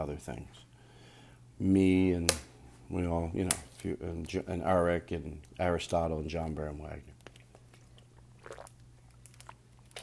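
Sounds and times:
speech: 0.0s - 0.7s, 1.6s - 7.1s
steady low hum: 0.0s - 10.0s
person gulping and swallowing water: 7.8s - 9.6s.

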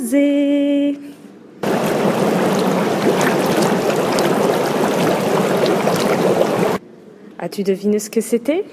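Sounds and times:
speech: 0.0s - 1.1s, 7.4s - 8.7s
jacuzzi water bubbling and churning: 1.6s - 6.8s.

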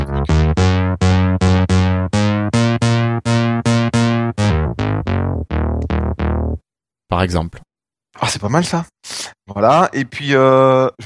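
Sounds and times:
synthesized bass line played on a phone app: 0.0s - 6.6s
speech: 7.1s - 11.0s.

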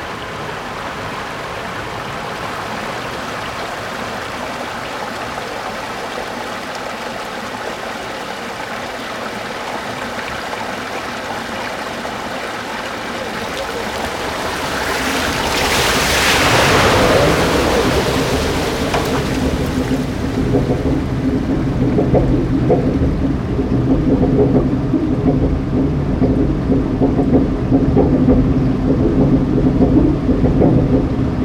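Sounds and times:
water rushing at a water mill with paddle wheel: 0.0s - 31.4s
deep churning rumble: 9.6s - 31.4s.

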